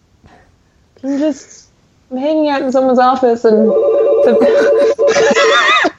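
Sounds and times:
speech: 0:01.0 - 0:05.7
telephone ringing in a pulsing trill: 0:03.6 - 0:05.8
people laughing: 0:04.2 - 0:05.9.

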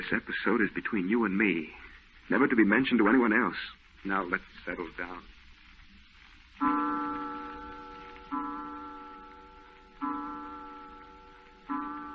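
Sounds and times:
speech: 0:00.0 - 0:05.3, 0:06.6 - 0:06.8
clock striking: 0:06.6 - 0:12.1.

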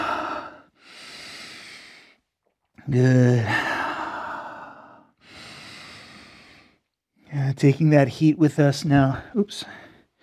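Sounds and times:
deep breathing during a yoga session: 0:00.0 - 0:02.4, 0:03.4 - 0:07.0
speech: 0:02.9 - 0:03.6, 0:07.6 - 0:09.8.

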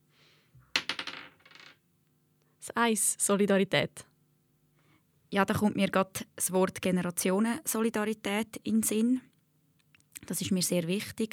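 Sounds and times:
dice clattering on a hard surface: 0:00.7 - 0:01.8
speech: 0:02.7 - 0:04.1, 0:05.3 - 0:09.3, 0:10.2 - 0:11.3.

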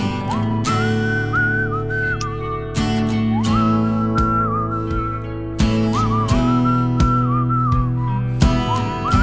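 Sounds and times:
whistled melody in a song: 0:00.0 - 0:09.2
backing track of sustained tones and percussive hits: 0:03.5 - 0:09.2.

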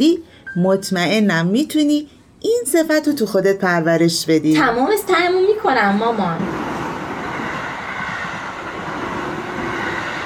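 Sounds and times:
speech: 0:00.0 - 0:06.8
train arriving at station rumbling: 0:04.5 - 0:10.2.

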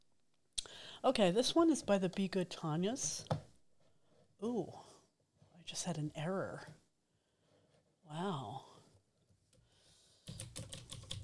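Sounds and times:
speech: 0:01.0 - 0:03.4, 0:04.4 - 0:04.9, 0:05.7 - 0:06.8, 0:08.1 - 0:08.7
fast clacky typing on an old-fashioned computer keyboard: 0:10.3 - 0:11.2.

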